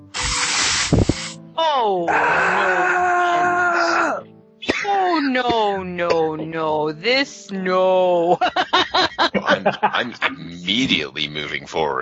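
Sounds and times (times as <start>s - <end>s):
hissing noise: 0.0s - 1.4s
speech: 1.6s - 2.8s, 5.4s - 12.0s
person screaming in anguish: 2.1s - 4.2s
laughter: 8.2s - 11.6s.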